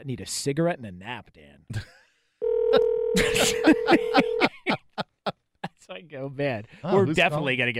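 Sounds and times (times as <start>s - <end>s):
speech: 0.0s - 2.0s, 2.7s - 4.8s, 6.0s - 7.7s
telephone dial tone humming: 2.4s - 4.5s
laughter: 3.2s - 5.8s.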